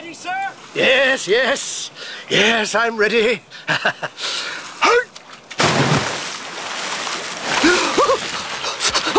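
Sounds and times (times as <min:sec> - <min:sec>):
speech: 0:00.1 - 0:01.7, 0:02.3 - 0:04.3
brief watery splashes of a horse-drawn bathing machine rolling into the surf: 0:05.6 - 0:09.1
rush of sea waves at a bathing place: 0:05.6 - 0:09.1
horse-drawn bathing machine creaking in the surf: 0:06.2 - 0:09.1.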